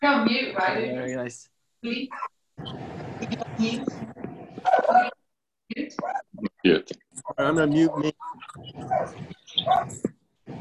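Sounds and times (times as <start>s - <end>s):
speech: 0.1s - 5.2s, 5.8s - 10.5s
dog barking: 2.1s - 2.3s, 4.6s - 5.2s, 7.7s - 10.0s.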